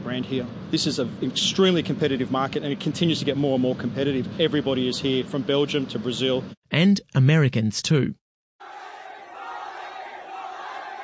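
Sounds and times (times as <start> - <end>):
speech: 0.1 - 8.2
crowd of thousands cheering wildly for a basketball star in Shenzhen, China: 8.6 - 11.0.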